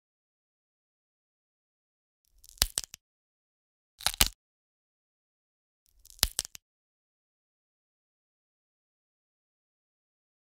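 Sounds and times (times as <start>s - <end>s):
bone damage: 2.4s - 3.0s, 4.0s - 4.4s, 6.0s - 6.6s.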